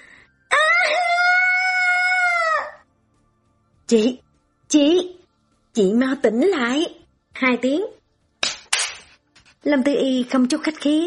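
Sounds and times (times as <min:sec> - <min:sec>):
woman screaming inside a speeding car after an escape: 0:00.5 - 0:02.8
speech: 0:03.9 - 0:05.2, 0:05.8 - 0:08.0, 0:09.6 - 0:11.0.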